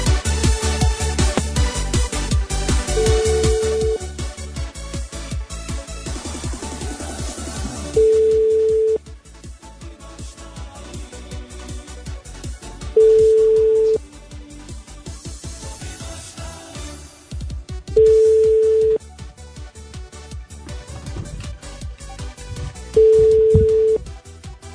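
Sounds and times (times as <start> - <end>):
continuous rhythmic music: 0.0 - 16.3, 20.0 - 24.7
telephone ringing tone during a dialed call: 3.0 - 4.0, 8.0 - 9.0, 13.0 - 14.0, 18.0 - 19.0, 23.0 - 24.0.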